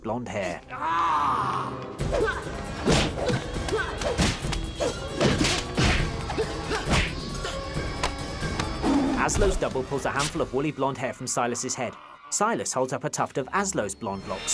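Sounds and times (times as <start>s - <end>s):
speech: 0.1s - 1.0s, 9.3s - 14.5s
loud punches: 2.0s - 10.4s.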